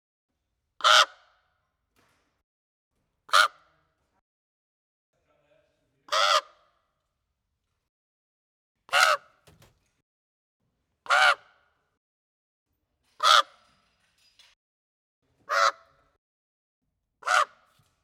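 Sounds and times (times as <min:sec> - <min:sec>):
raven cawing: 0:00.8 - 0:01.2, 0:06.1 - 0:06.7, 0:08.9 - 0:09.3, 0:11.1 - 0:11.7, 0:13.2 - 0:13.6, 0:15.5 - 0:15.9, 0:17.2 - 0:17.7.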